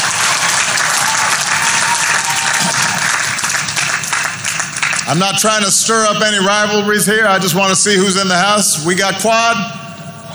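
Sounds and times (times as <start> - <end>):
large crowd applauding: 0.0 - 6.0
speech: 5.1 - 9.8.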